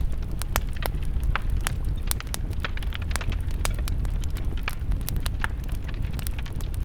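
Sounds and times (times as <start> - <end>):
warm bonfire crackling: 0.0 - 6.8.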